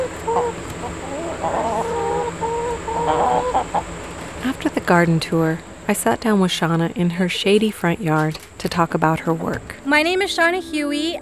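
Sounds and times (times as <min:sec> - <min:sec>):
chickens clucking in a garden chicken coop: 0:00.0 - 0:04.5
faint constant hum: 0:00.0 - 0:11.2
speech: 0:03.1 - 0:11.2.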